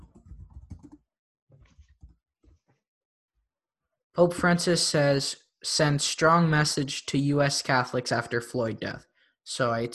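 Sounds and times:
typing on a computer keyboard: 0.0 - 1.0
speech: 4.2 - 9.9.

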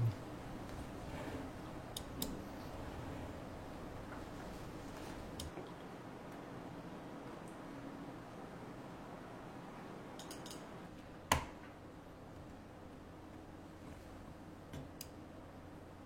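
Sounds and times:
steady low room hum: 0.0 - 16.0
computer mouse clicks: 10.2 - 10.7.

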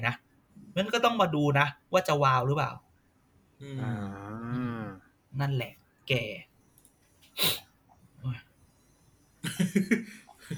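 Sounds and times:
speech: 0.0 - 0.2, 0.8 - 2.8, 3.6 - 4.4, 5.3 - 6.5, 7.4 - 7.6, 8.2 - 8.4, 9.4 - 10.5
nose sniffling in bad cold weather: 7.3 - 7.7.

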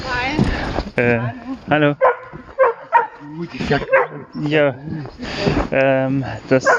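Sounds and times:
speech: 1.0 - 2.1, 3.3 - 6.7
dog barking in high-pitched frustrated yaps: 2.0 - 3.3, 3.9 - 4.3.

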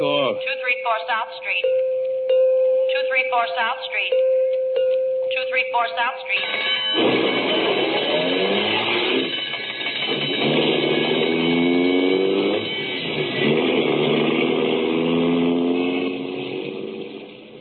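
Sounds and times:
road and mechanical noise: 0.0 - 17.5
speech: 0.4 - 2.1, 2.9 - 4.6, 5.3 - 8.6
old ambulance engine revving and accelerating through gears: 6.8 - 17.5.

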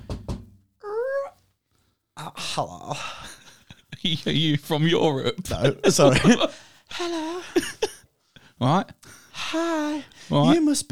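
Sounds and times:
solid knocks on a door: 0.0 - 0.6
speech: 2.6 - 3.4, 4.0 - 7.8, 8.6 - 10.9.

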